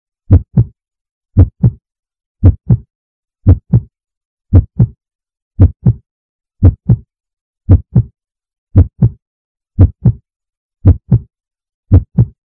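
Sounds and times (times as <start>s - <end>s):
heart beating strongly: 0.3s - 0.7s, 1.4s - 1.8s, 2.4s - 2.8s, 3.5s - 3.9s, 4.5s - 5.0s, 5.6s - 6.0s, 6.6s - 7.0s, 7.7s - 8.1s, 8.8s - 9.2s, 9.8s - 10.2s, 10.8s - 11.3s, 11.9s - 12.4s.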